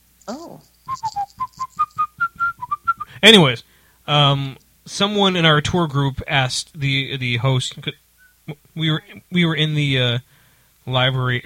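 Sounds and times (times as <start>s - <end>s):
speech: 0.3s - 1.4s, 3.2s - 10.3s, 10.9s - 11.4s
person whistling a theme tune from a musical: 0.9s - 3.2s.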